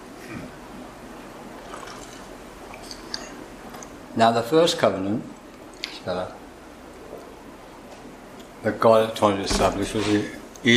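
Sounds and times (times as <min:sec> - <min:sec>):
sipping and swallowing water: 0:01.6 - 0:04.0
speech: 0:04.2 - 0:05.4, 0:06.0 - 0:06.4, 0:08.6 - 0:10.7.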